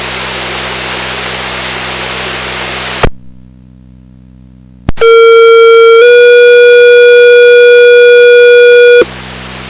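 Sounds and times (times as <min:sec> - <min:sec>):
radio static hissing: 0:04.9 - 0:09.1
two-tone pager alert test tones: 0:05.0 - 0:09.0.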